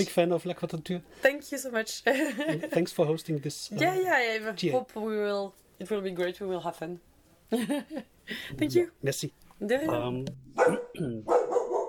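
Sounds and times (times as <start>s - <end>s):
speech: 0.0s - 11.4s
dog barking in a studio: 10.6s - 11.8s.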